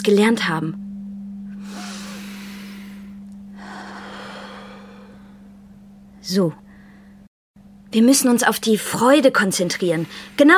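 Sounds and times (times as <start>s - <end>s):
speech: 0.0s - 0.8s, 6.3s - 6.6s, 7.9s - 10.5s
steady electrical hum: 0.0s - 10.5s
deep breaths in a calming breathing exercise: 1.5s - 5.7s, 6.6s - 7.3s, 9.9s - 10.4s.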